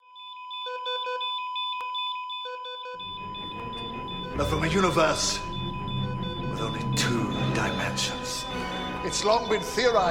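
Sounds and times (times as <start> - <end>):
smoke detector alarm beeping: 0.0 - 10.0
speech: 4.4 - 5.5, 6.6 - 10.0.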